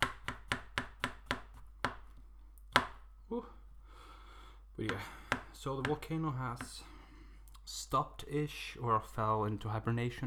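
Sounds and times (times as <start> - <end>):
knife chopping slightly mushy food on a cutting board: 0.0 - 3.0, 4.9 - 6.9
speech: 3.3 - 3.6, 4.8 - 6.9, 7.7 - 10.2.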